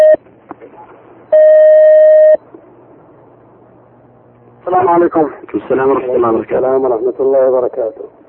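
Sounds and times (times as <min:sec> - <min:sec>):
electronic telephone tone of a phone call taken on air: 0:00.0 - 0:00.2, 0:01.3 - 0:02.4
speech: 0:04.7 - 0:08.2.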